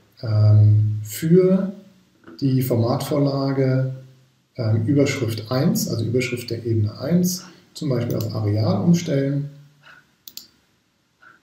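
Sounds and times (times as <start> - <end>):
speech: 0.2 - 1.8, 2.4 - 4.0, 4.6 - 9.6
computer mouse clicks: 9.8 - 10.6.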